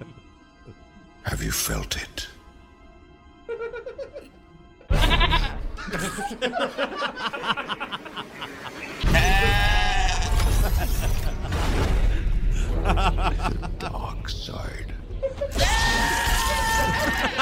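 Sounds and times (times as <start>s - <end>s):
speech: 1.2s - 2.4s, 5.9s - 9.6s, 12.8s - 14.8s
laughter: 3.5s - 14.2s, 15.2s - 17.4s
goats screaming: 9.0s - 10.6s, 15.5s - 17.4s.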